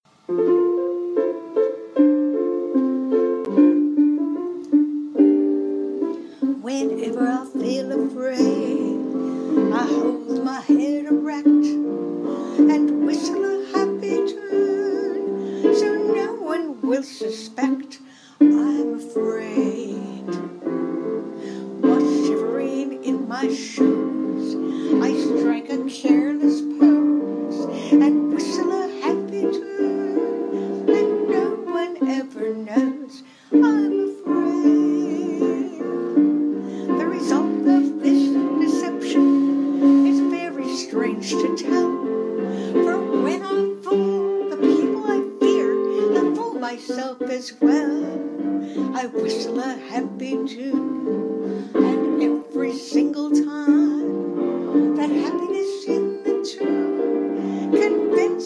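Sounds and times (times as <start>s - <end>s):
person practicing a tune: 0.1s - 17.7s, 18.4s - 58.4s.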